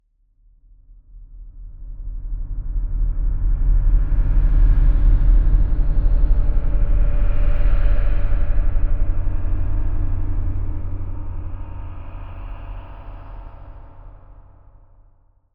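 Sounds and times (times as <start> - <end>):
rumble: 1.0 - 15.2.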